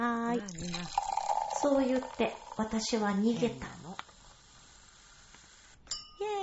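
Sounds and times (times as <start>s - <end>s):
speech: 0.3s - 1.0s, 1.6s - 4.0s
glasses clinking in a toast: 0.5s - 2.6s, 5.9s - 6.2s.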